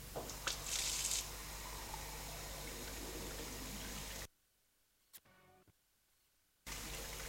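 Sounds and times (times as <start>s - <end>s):
shower water running: 0.2s - 4.3s, 6.7s - 7.2s.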